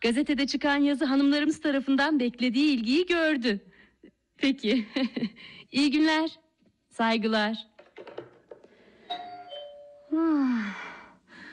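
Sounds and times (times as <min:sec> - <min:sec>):
speech: 0:00.0 - 0:03.7, 0:04.4 - 0:06.4, 0:07.0 - 0:08.2, 0:10.1 - 0:10.9
faint room noise: 0:00.0 - 0:11.5
two-tone doorbell chiming: 0:09.1 - 0:10.2.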